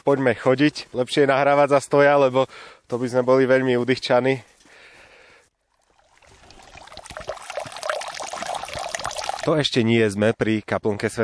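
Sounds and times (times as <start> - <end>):
speech: 0.0 - 4.5, 9.5 - 11.2
water trickling and splashing from a small spring beside a Way of the Cross path: 5.6 - 9.6.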